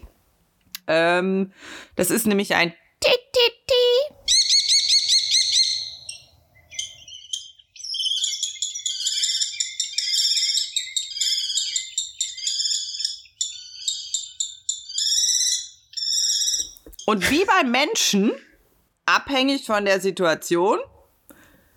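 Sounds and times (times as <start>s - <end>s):
speech: 0.9s - 2.8s, 17.1s - 18.5s, 19.1s - 21.0s
common kestrel calling in shrill kee-kee cries: 4.2s - 17.5s.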